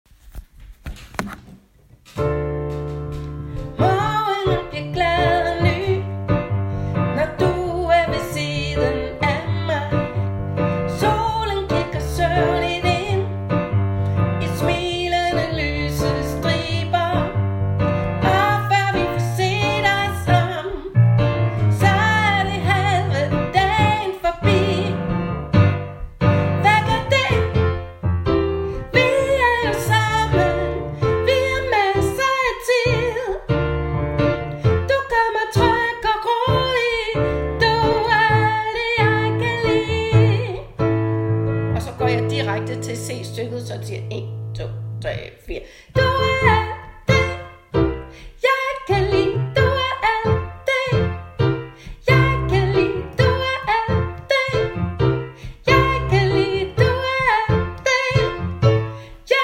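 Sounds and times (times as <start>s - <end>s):
soprano singing: 3.2s - 59.4s.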